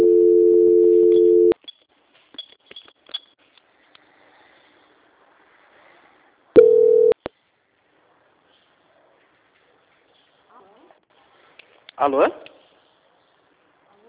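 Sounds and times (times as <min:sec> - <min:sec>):
telephone tones during a call transfer while on hold: 0:00.0 - 0:01.6, 0:06.6 - 0:07.2
speech: 0:12.0 - 0:12.5.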